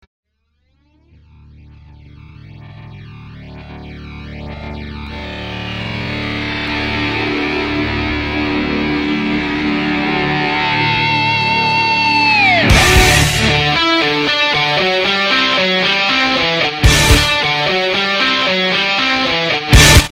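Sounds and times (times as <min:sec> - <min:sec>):
hard guitar melody: 0:01.0 - 0:20.1.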